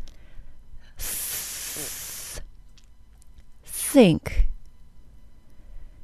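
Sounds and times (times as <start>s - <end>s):
breathy hiss like an unvoiced TH fricative: 0.0s - 2.5s
speech: 1.8s - 2.0s, 3.9s - 4.5s.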